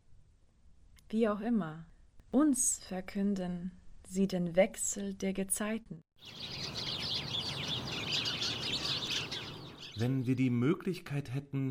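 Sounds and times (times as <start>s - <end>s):
speech: 1.1s - 6.8s, 10.0s - 11.6s
two kinds of migratory birds calling: 6.2s - 10.3s.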